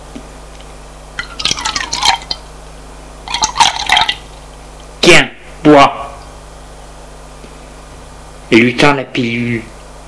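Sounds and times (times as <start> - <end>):
whisky glugging from a bottle into a glass: 1.2 - 2.5, 3.3 - 4.4
speech: 8.5 - 9.7.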